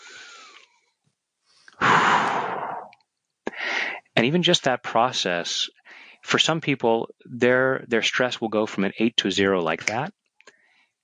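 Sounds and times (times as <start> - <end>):
deep breath: 0.0 - 0.8, 1.5 - 4.1, 5.8 - 6.2
soft voice: 3.5 - 10.1
speech: 4.2 - 10.2.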